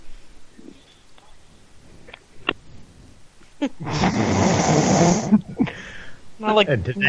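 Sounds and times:
quiet shuffling: 0.0s - 3.6s
speech: 3.6s - 5.4s, 6.4s - 7.0s
raspy heavy breathing through a phone line: 5.6s - 6.2s.

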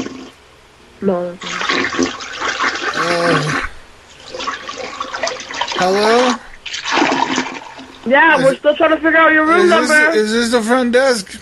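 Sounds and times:
toilet flushing with a rushing gush of water: 0.0s - 0.3s, 1.4s - 8.1s
speech: 1.0s - 2.2s, 3.0s - 3.7s, 5.8s - 6.4s, 8.1s - 11.4s.

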